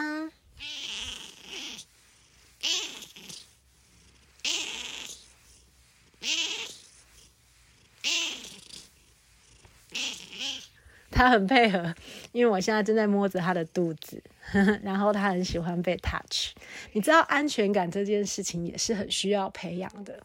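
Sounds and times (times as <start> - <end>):
cat purring softly: 0.0 - 14.8
cat meowing: 0.6 - 1.9, 2.6 - 3.3, 4.4 - 5.2, 6.2 - 6.8, 8.0 - 8.6, 9.9 - 10.7
speech: 11.2 - 20.2.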